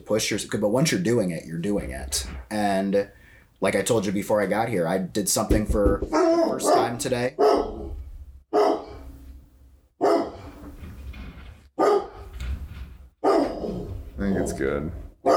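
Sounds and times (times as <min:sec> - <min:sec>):
speech: 0:00.1 - 0:07.7, 0:14.6 - 0:15.3
dog giving harsh drawn-out barks: 0:06.2 - 0:07.9, 0:08.6 - 0:09.0, 0:10.0 - 0:10.5, 0:11.8 - 0:12.2, 0:13.2 - 0:15.3.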